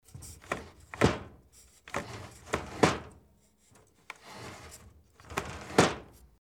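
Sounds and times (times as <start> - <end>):
sliding door: 0.4 - 3.2, 4.2 - 6.1.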